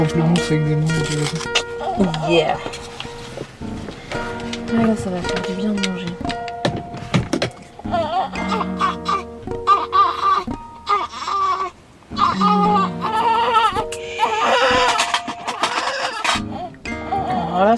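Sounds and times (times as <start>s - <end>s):
speech: 0.0s - 3.0s, 4.7s - 6.0s
newborn baby lying on its mother crying: 1.6s - 2.6s, 7.8s - 17.7s
soft thumps: 2.5s - 12.8s.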